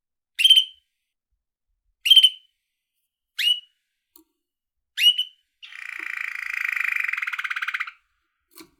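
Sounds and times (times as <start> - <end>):
caged yellow canary chirping and trilling: 2.0 - 2.4, 3.4 - 3.7, 5.0 - 8.7.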